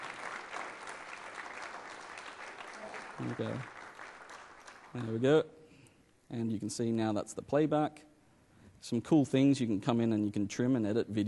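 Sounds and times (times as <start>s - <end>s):
audience applauding at a live demonstration: 0.0s - 5.3s
speech: 3.2s - 3.8s, 4.9s - 5.6s, 6.3s - 8.1s, 8.8s - 11.2s.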